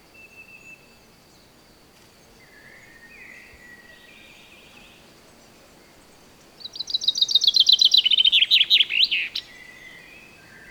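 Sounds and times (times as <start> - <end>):
Fringilla coelebs common chaffinch singing: 6.8 - 9.5.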